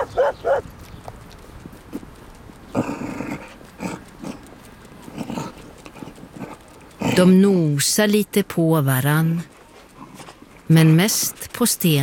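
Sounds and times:
dog barking: 0.0s - 0.6s
dog rough bark or growl: 0.0s - 0.6s, 2.7s - 7.3s
speech: 0.2s - 0.8s, 7.2s - 9.5s, 10.7s - 12.0s.

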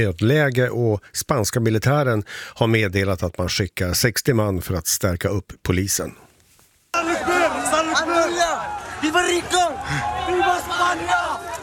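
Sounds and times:
speech: 0.0s - 6.3s
large crowd shouting while running toward a hill in Ceuta: 7.0s - 11.6s.

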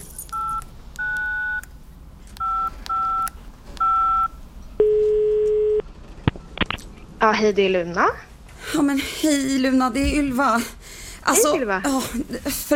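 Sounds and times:
longer lower steady telephone tone: 0.4s - 1.6s, 2.4s - 5.8s
speech: 7.2s - 12.7s.

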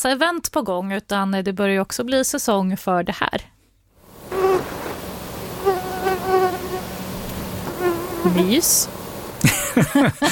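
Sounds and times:
speech: 0.0s - 3.6s, 8.3s - 10.2s
mosquito buzzing: 4.2s - 9.4s
laughter: 9.4s - 10.2s.

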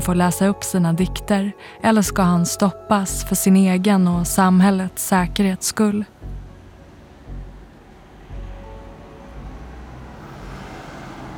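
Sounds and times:
speech: 0.0s - 6.2s
car driving with steady low engine and road rumble: 5.2s - 11.3s.

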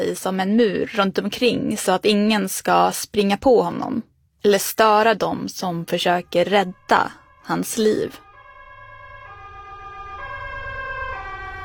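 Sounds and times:
speech: 0.0s - 8.2s
ambulance siren wailing in a two-note pattern: 5.8s - 11.6s.

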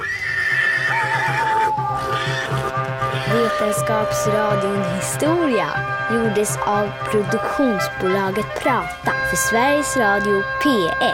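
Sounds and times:
galloping hooves: 0.0s - 5.0s
horse whinnying: 0.0s - 5.0s
speech: 3.5s - 11.1s.

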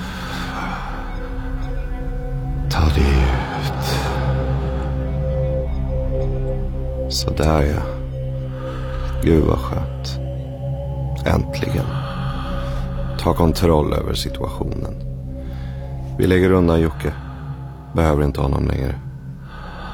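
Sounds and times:
slow deep breaths in and out: 0.0s - 2.6s, 3.2s - 5.7s, 8.1s - 9.2s, 9.8s - 13.5s, 15.0s - 16.2s, 16.9s - 18.0s, 19.0s - 19.9s
steady low droning hum: 0.0s - 19.9s
speech: 7.2s - 8.0s, 9.2s - 10.2s, 11.2s - 12.0s, 13.2s - 15.1s, 16.2s - 17.2s, 18.0s - 19.0s.

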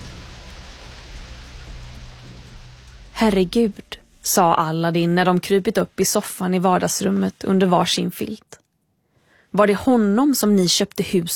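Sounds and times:
heavy rain pouring: 0.0s - 5.0s
speech: 3.2s - 8.6s, 9.5s - 11.3s.

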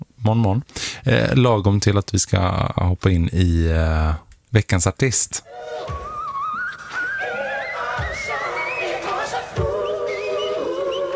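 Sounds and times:
speech: 0.2s - 6.0s
bright wavering whistled jingle melody: 5.6s - 11.1s.

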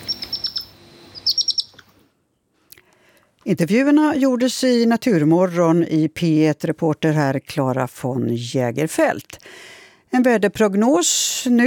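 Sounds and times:
European hedgehog young giving very high-pitched chirps: 0.0s - 1.9s
speech: 3.4s - 11.6s.

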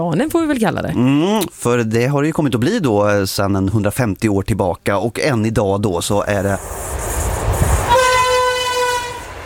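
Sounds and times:
speech: 0.0s - 7.1s
train rumbling past a spruce tree: 6.0s - 9.4s
train horn blast: 7.1s - 9.4s.

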